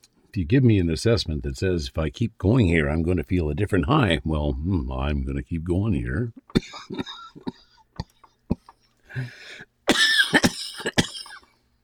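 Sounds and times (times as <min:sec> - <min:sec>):
speech: 0:00.4 - 0:07.6, 0:09.2 - 0:10.0
person coughing harshly after inhaling from a vaporizer: 0:06.5 - 0:08.8, 0:09.9 - 0:11.6
raspy wheezing breath: 0:09.0 - 0:09.7.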